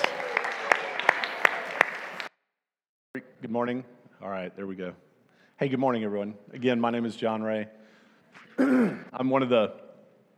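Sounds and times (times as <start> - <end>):
room full of people clapping: 0.0 - 2.3
speech: 3.4 - 7.8, 8.6 - 9.8.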